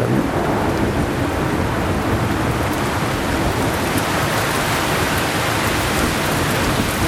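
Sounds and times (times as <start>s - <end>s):
low rumble: 0.0s - 2.4s
heavy rain pouring: 0.0s - 7.0s.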